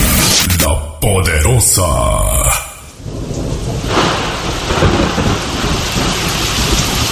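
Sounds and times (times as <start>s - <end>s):
speech: 1.0s - 2.5s
steady loud rainfall: 2.6s - 7.1s
deep rumble of thunder: 3.0s - 7.1s.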